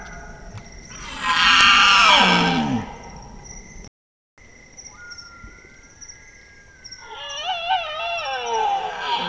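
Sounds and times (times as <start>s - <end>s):
male Bactrian deer calling: 0.9s - 2.9s, 7.0s - 9.2s.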